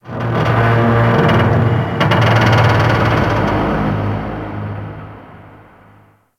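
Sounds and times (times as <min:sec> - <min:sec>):
large underwater metal creaks in the ocean: 0:00.1 - 0:04.1.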